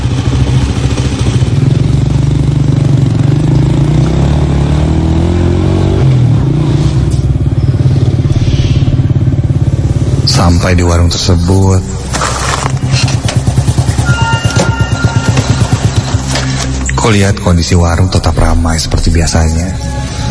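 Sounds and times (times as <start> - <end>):
motorcycle engine chugging at night: 0.0 - 20.2
speech: 10.4 - 12.4, 17.0 - 19.9.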